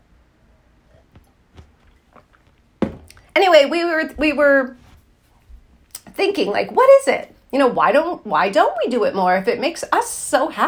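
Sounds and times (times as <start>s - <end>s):
person sipping coffee: 0.9s - 3.2s
person swallowing coffee: 0.9s - 3.3s
speech: 3.4s - 4.8s, 6.2s - 10.6s.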